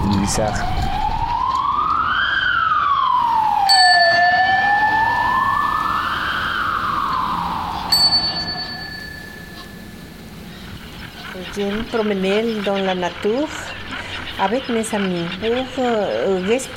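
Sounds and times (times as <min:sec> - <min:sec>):
police siren wailing in rising and falling sweeps: 0:00.0 - 0:10.7
speech: 0:00.2 - 0:00.9, 0:11.6 - 0:13.7, 0:14.4 - 0:16.7
heavy traffic with cars driving very fast in a town centre: 0:03.1 - 0:12.2
ringing bell-like tones: 0:03.2 - 0:11.3.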